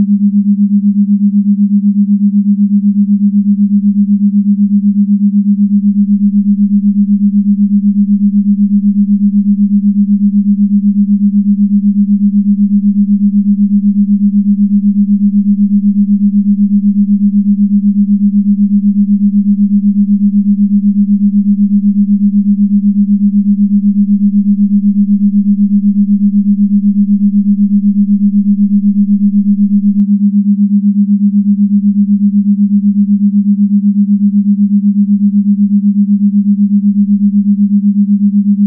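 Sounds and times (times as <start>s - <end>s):
8hz ether resonance tone: 0.0s - 38.6s.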